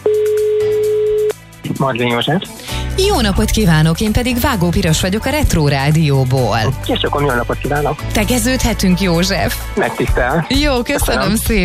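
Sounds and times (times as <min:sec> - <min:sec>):
telephone ringing tone: 0:00.0 - 0:01.4
speech: 0:01.8 - 0:11.6.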